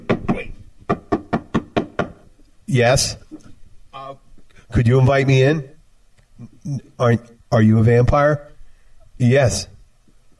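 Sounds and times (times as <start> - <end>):
sharp knocking on a door: 0.0 - 2.2
speech: 2.7 - 3.2, 4.7 - 5.7, 6.6 - 8.5, 9.2 - 9.7.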